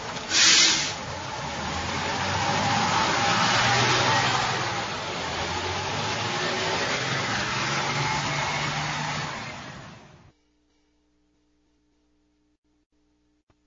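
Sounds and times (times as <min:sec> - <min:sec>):
bus engine rumbling and hissing: 0:00.0 - 0:10.3.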